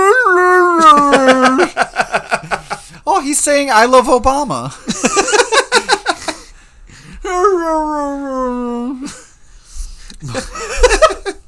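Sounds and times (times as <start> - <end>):
person imitating a howling dog: 0.0 - 1.7, 7.2 - 9.1
laughter: 0.8 - 3.0, 4.8 - 6.5, 10.2 - 11.4
speech: 3.4 - 5.3.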